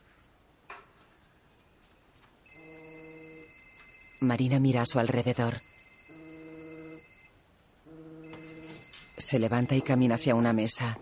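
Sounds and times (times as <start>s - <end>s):
mobile phone ringing with an incoming call: 2.5s - 4.6s, 5.6s - 10.5s
speech: 4.2s - 5.8s, 9.3s - 11.0s.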